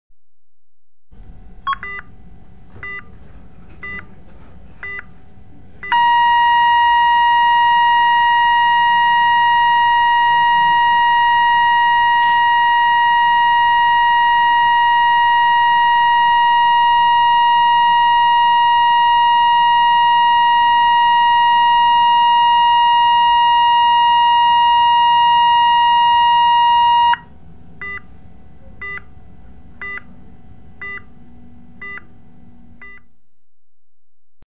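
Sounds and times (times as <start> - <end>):
heartbeat alarm: 1.7 - 2.1, 2.8 - 3.1, 5.8 - 28.1, 28.8 - 29.1, 29.8 - 30.1, 30.8 - 31.1, 31.8 - 32.1, 32.8 - 33.1.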